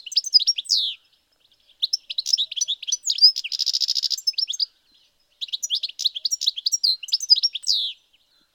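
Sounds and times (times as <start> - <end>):
European goldfinch Carduelis carduelis tinkling twittering song: 0.0 - 8.5.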